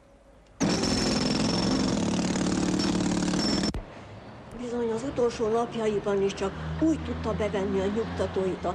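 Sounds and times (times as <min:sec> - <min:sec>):
loud power drill drilling into a water main pipe in the street: 0:00.6 - 0:03.8
speech: 0:05.2 - 0:08.7.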